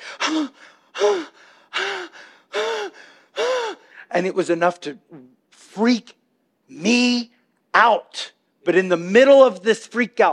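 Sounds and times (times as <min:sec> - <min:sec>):
voice imitating panicked gasping breaths: 0:00.0 - 0:04.1
speech: 0:00.2 - 0:01.8, 0:04.2 - 0:10.3.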